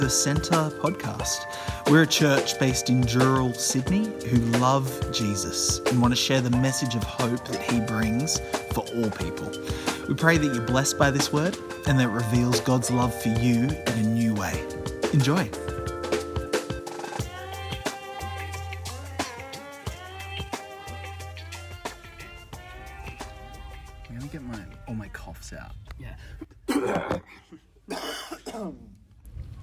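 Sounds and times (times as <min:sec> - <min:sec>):
speech: 0:00.0 - 0:15.8
musical intro: 0:00.0 - 0:25.8
harsh coughs from a person recovering from COVID: 0:26.7 - 0:28.9.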